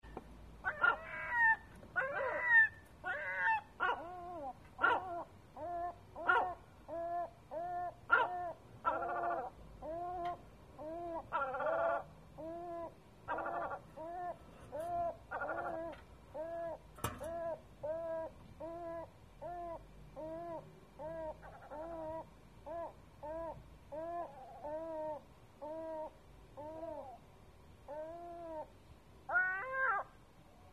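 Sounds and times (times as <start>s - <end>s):
seagull on the roof in Sète: 0.6s - 27.1s, 29.3s - 30.1s.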